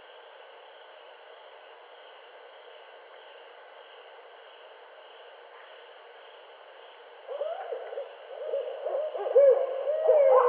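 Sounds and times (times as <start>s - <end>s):
Barred owl calls: 7.3s - 10.4s.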